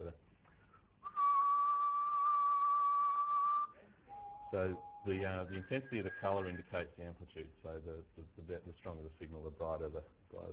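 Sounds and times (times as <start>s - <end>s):
speech: 0.0s - 0.3s, 4.5s - 10.5s
person whistling one long steady note: 1.0s - 6.8s.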